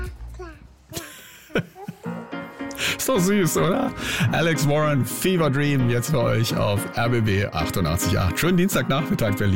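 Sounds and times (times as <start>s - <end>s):
baby babbling with coos and squeals: 0.0s - 1.0s, 1.8s - 2.2s
song from 2026: 2.0s - 9.5s
speech: 3.1s - 9.5s.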